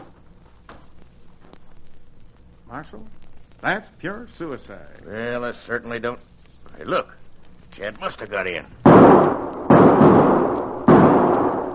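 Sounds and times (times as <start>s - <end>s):
speech: 2.7s - 7.2s, 7.8s - 9.5s
gunshots: 8.8s - 11.7s.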